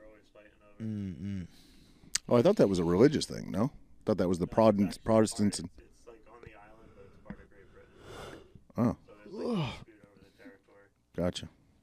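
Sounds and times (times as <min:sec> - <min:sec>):
speech: 0:00.4 - 0:01.7, 0:02.3 - 0:05.8, 0:08.8 - 0:09.9, 0:11.2 - 0:11.6
person yawning: 0:09.3 - 0:09.8.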